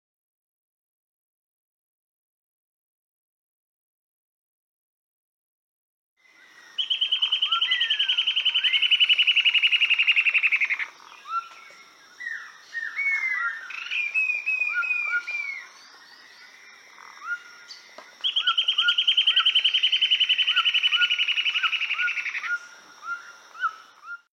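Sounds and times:
eyebrowed antbird singing: 0:06.2 - 0:24.3.

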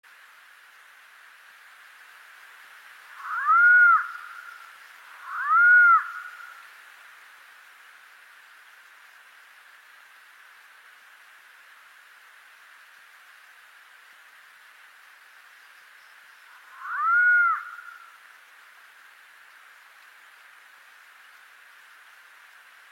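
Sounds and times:
Andean potoo calling: 0:03.2 - 0:06.5, 0:16.5 - 0:18.1.

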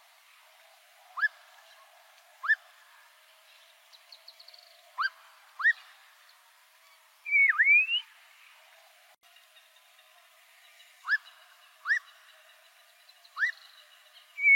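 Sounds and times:
Black-crowned monjita song: 0:01.1 - 0:02.8, 0:03.4 - 0:08.2, 0:09.4 - 0:14.5.

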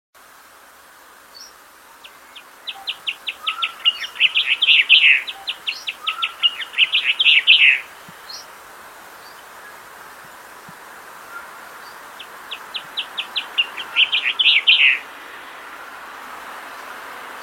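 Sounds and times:
Tenerife blue chaffinch singing: 0:01.4 - 0:08.4, 0:11.3 - 0:15.0.

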